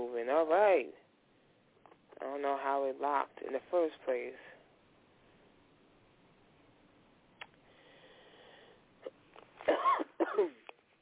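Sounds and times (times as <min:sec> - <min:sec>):
speech: 0:00.0 - 0:01.1, 0:02.2 - 0:04.6
quiet hum: 0:00.0 - 0:11.0
harsh coughs: 0:09.0 - 0:10.7.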